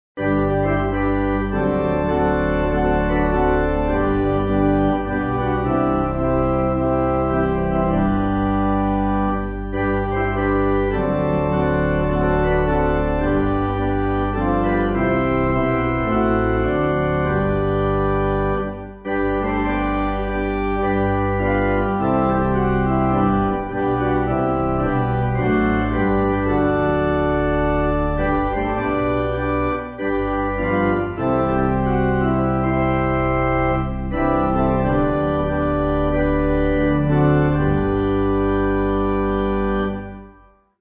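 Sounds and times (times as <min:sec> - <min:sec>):
pipe organ: 0:00.2 - 0:40.8.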